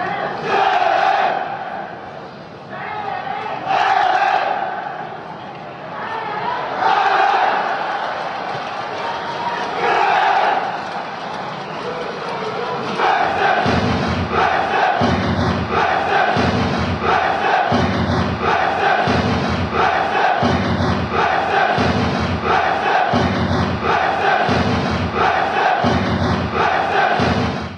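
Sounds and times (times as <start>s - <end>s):
chanting: 0.1s - 2.0s, 3.0s - 27.7s.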